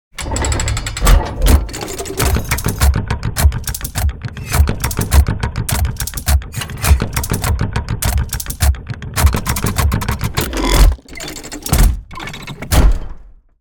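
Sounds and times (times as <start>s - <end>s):
large cylinder press gearbox: 0.2s - 13.0s.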